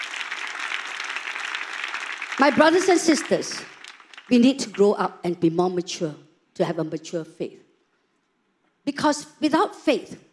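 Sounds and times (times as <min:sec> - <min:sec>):
audience clapping: 0:00.0 - 0:05.0
speech: 0:02.4 - 0:07.6, 0:08.8 - 0:10.3.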